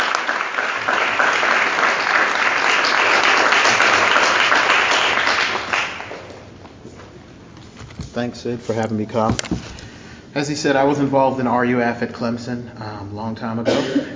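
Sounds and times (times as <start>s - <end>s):
audience applause: 0.0s - 6.5s
speech: 8.2s - 14.1s.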